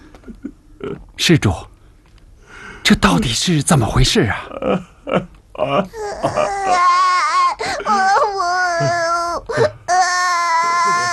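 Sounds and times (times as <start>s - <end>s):
speech: 0.2s - 1.7s, 2.9s - 6.9s
person crying and sobbing in long high wavering wails: 4.5s - 11.1s.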